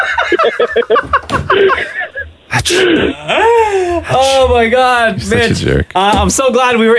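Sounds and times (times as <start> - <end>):
speech: 0.3 - 6.9
giggly breathy vocal sounds: 1.4 - 4.6
person sneezing: 2.5 - 3.4.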